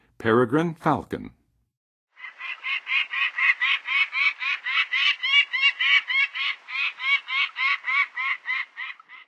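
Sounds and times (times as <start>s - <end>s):
Peregrine Falcon calling: 2.2s - 9.2s.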